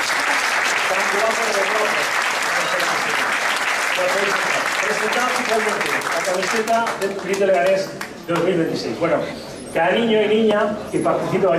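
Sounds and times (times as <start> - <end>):
crowd clapping: 0.0 - 8.5
speech: 1.1 - 11.5.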